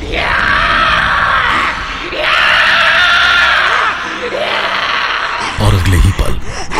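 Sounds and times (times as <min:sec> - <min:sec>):
woman screaming: 0:00.1 - 0:05.5.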